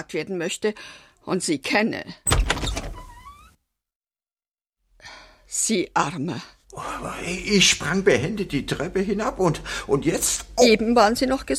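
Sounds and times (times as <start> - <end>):
speech: 0.0 - 2.8, 5.5 - 11.5
door being opened with a squeaky creak: 2.3 - 3.6.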